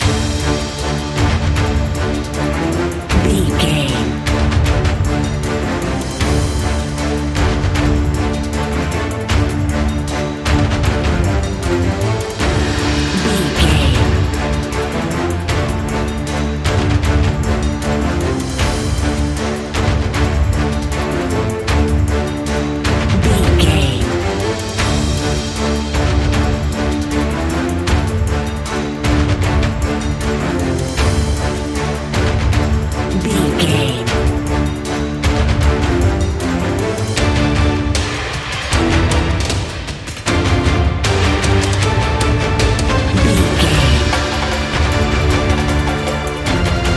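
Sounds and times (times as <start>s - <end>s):
epic boss fight narrative music loop: 0.0s - 46.9s.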